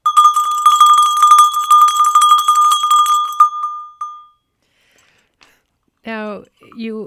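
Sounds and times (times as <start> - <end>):
small early medieval-style bell clanging: 0.0 - 4.4
speech: 6.7 - 7.0.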